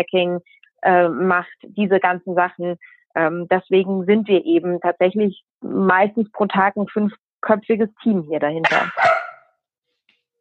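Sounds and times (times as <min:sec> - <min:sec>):
speech: 0:00.0 - 0:09.0
dog barking: 0:08.6 - 0:09.5.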